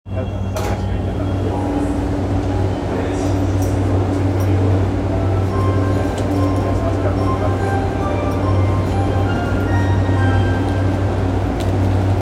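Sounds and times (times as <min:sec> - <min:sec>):
train sounds at Kudanshita station: 0:00.1 - 0:12.2.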